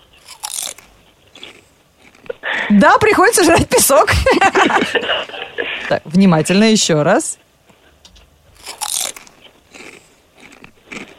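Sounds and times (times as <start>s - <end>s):
crunchy chewing: 0.0s - 2.4s, 8.6s - 11.1s
speech: 2.7s - 7.4s
laughter: 3.4s - 6.0s.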